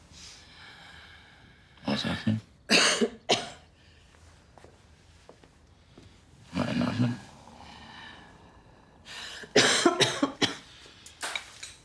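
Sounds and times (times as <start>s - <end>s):
speech: 2.0s - 3.1s
person coughing harshly and wetly during a medical examination: 2.7s - 3.7s, 9.5s - 10.7s.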